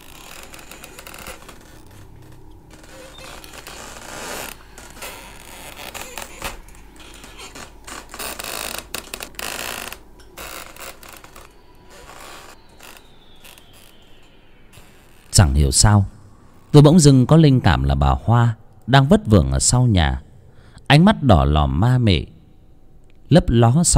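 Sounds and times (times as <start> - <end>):
old wooden door creaking on its hinge in the wind: 0.0 - 15.5
steady hiss: 0.0 - 23.9
speech: 15.4 - 20.3, 20.9 - 22.3, 23.3 - 23.9.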